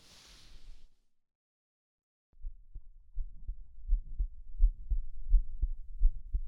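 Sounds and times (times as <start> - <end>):
heartbeat heard against chest: 2.4 - 6.4.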